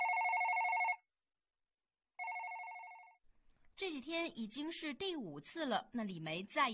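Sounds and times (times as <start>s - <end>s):
telephone bell ringing: 0.0s - 1.0s, 2.2s - 3.2s
speech: 3.8s - 6.7s.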